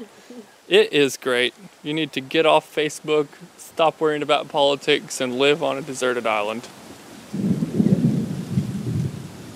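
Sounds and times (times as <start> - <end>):
speech: 0.0 - 7.4
faint hiss: 0.0 - 9.5
rolling thunder from a night lightning storm: 7.1 - 9.5.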